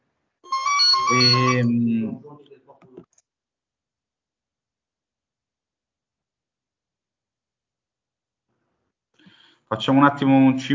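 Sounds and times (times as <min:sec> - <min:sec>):
mobile phone ringing with a bright melodic electronic ringtone: 0:00.5 - 0:01.8
speech: 0:01.1 - 0:03.1, 0:09.7 - 0:10.7.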